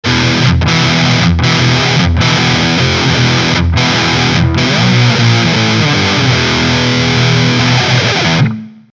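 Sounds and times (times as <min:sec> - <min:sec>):
Jackson DK2 electric guitar on bridge pickup with distortion: 0:00.0 - 0:08.9.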